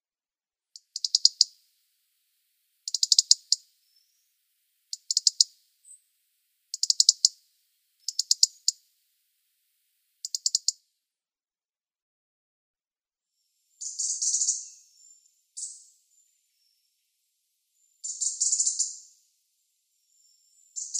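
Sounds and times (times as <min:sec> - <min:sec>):
European robin calling: 0:00.8 - 0:01.7, 0:02.8 - 0:06.1, 0:06.7 - 0:09.0, 0:10.0 - 0:10.8, 0:13.8 - 0:17.1, 0:17.8 - 0:20.9.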